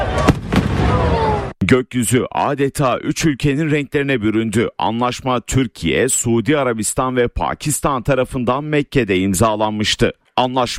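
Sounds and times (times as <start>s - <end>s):
fireworks bursting at a nighttime national celebration: 0.1s - 1.4s
speech: 1.7s - 10.7s.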